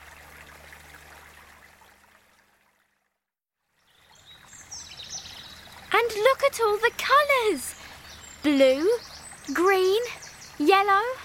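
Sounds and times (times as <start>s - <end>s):
trickling running water from melted ice: 0.0s - 11.2s
faint birds chirping: 3.8s - 11.2s
speech: 6.0s - 7.8s, 8.4s - 11.2s.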